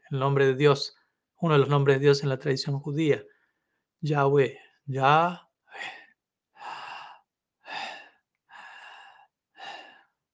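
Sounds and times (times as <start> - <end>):
speech: 0.1 - 3.3, 4.0 - 6.0
slow breathing, inhalations and exhalations: 5.7 - 10.3.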